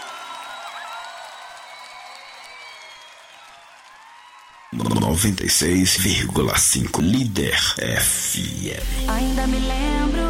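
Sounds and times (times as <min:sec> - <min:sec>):
crowd applauding during a worship song: 0:00.0 - 0:06.6
speech: 0:04.7 - 0:10.2.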